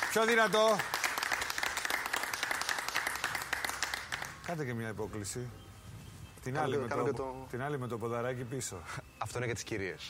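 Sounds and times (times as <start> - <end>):
studio audience applauding: 0.0 - 4.6
speech: 0.1 - 0.9, 4.5 - 5.6, 6.4 - 10.0.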